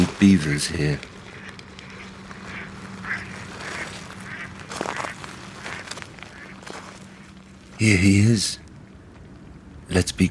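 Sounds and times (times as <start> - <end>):
ducks quacking at a beach: 0.0 - 7.4
steady low hum: 0.0 - 10.2
speech: 0.2 - 1.1, 7.8 - 8.6, 9.9 - 10.2.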